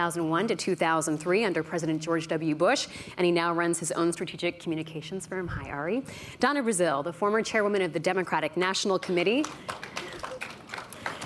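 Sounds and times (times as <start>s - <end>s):
speech: 0.0s - 10.0s
audience applause: 9.4s - 11.2s.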